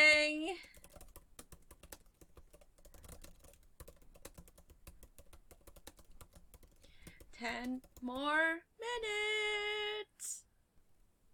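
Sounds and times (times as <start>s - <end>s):
rapid typing on a computer keyboard: 0.5s - 8.2s
speech: 7.4s - 10.4s.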